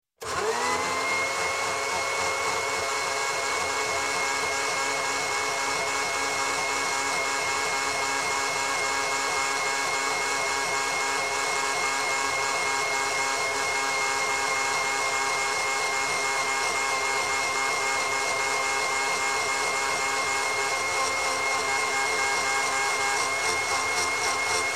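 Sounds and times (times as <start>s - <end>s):
electric blender starting, running and stopping with liquid: 0.2s - 24.7s.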